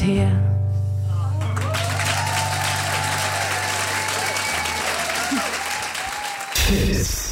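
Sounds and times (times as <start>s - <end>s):
speech: 0.1s - 0.5s, 6.7s - 7.2s
audience applause: 1.4s - 6.9s.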